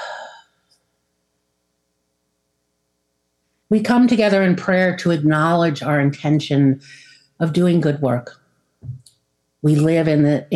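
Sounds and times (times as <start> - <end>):
group breathing out together during a prayer gathering: 0.0 - 0.6
speech: 3.7 - 9.0, 9.6 - 10.5.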